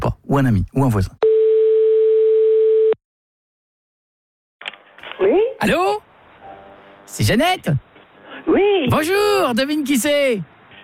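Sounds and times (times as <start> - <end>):
speech: 0.3 - 1.2, 5.2 - 6.1, 7.1 - 10.5
telephone ringback tone on an outgoing call: 1.2 - 3.0.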